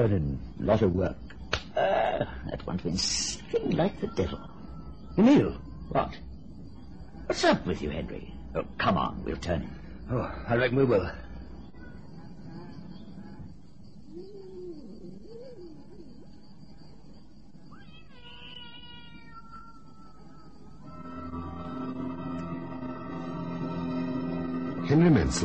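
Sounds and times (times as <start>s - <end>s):
speech: 0.0s - 4.6s, 5.2s - 6.3s, 7.3s - 11.2s, 24.9s - 25.4s
low hum: 0.0s - 25.4s
sustained eerie musical drone: 3.0s - 16.6s, 19.4s - 25.4s
cat meowing: 17.7s - 20.6s.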